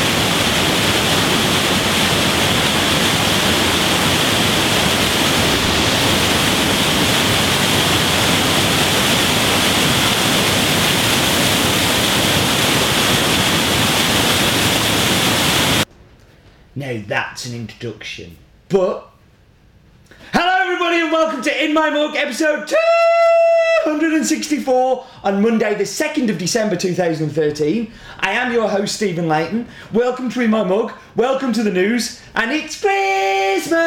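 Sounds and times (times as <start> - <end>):
rushing waterfall roaring: 0.0 - 15.9
speech: 17.4 - 19.1, 20.8 - 33.8.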